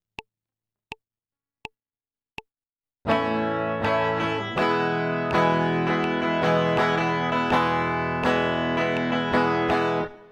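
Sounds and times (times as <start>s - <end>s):
guitar strumming A and E chords: 3.1s - 10.3s.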